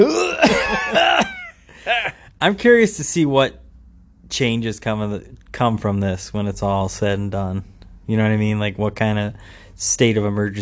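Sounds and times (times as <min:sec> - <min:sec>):
raspy coughs into hand: 0:00.0 - 0:02.2
speech: 0:00.0 - 0:03.6, 0:04.3 - 0:10.6.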